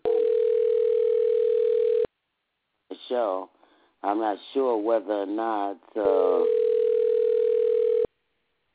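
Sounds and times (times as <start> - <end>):
telephone ringback tone from an unanswered call: 0.0 - 2.1, 6.4 - 8.1
speech: 3.1 - 6.7.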